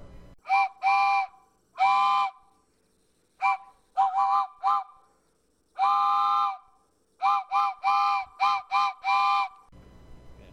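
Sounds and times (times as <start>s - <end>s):
loud train whistle toots and blasts: 0.4s - 2.4s, 3.4s - 5.0s, 5.8s - 9.7s.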